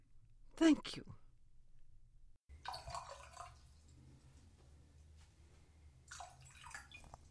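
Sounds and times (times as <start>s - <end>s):
low steady hum: 0.2s - 7.2s
speech: 0.6s - 1.2s
bourbon poured into a glass: 2.5s - 4.0s, 6.1s - 7.2s.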